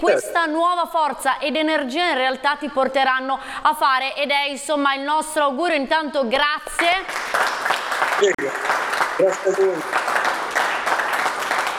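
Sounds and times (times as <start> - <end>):
speech: 0.0 - 10.2
studio audience applause: 7.0 - 11.7.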